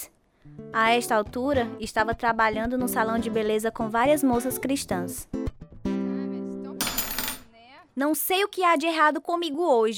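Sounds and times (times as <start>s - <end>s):
speech: 0.0s - 5.4s, 8.0s - 9.9s
scissors clattering onto a hard floor: 6.8s - 7.5s.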